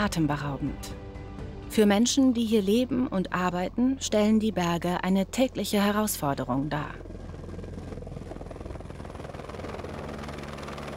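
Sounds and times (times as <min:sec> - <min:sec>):
speech: 0:00.0 - 0:01.0, 0:01.7 - 0:07.1
helicopter transporting goods in the mountains: 0:06.8 - 0:10.9.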